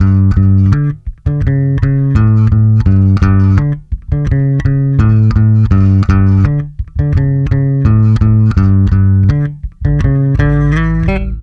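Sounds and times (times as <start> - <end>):
pop rock electric bass in G major: 0.0 - 11.4.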